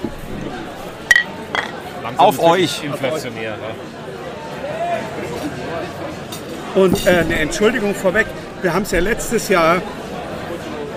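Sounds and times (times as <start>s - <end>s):
faint chatter: 0.0s - 10.9s
drinking glasses clinking in a toast: 1.0s - 1.9s, 6.8s - 9.8s
speech: 2.0s - 4.1s, 6.8s - 10.0s.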